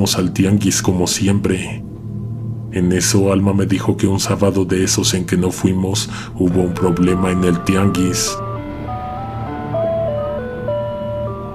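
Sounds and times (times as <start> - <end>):
speech: 0.0 - 1.9, 2.7 - 8.4
tinny music-box-style ice cream truck jingle: 6.5 - 11.5.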